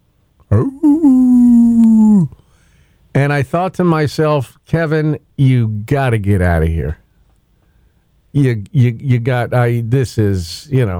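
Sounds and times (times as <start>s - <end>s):
speech: 0.5s - 1.2s, 3.2s - 7.0s, 8.4s - 10.9s
person's voice imitating a howl: 0.5s - 2.4s.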